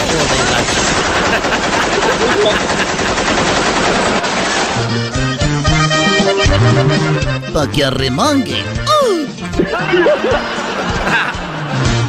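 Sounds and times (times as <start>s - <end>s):
loud automatic rifle fire: 0.0s - 5.0s
laughter: 0.2s - 4.6s, 8.9s - 12.0s
band playing with bass and brass: 4.8s - 10.8s
speech: 7.6s - 8.9s, 9.8s - 11.2s.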